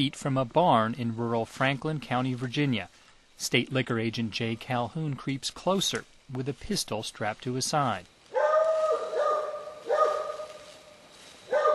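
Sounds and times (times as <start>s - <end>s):
speech: 0.0s - 8.1s
faint steady tonal hum: 0.0s - 11.7s
dog barking at a barn: 8.3s - 10.6s, 11.5s - 11.7s.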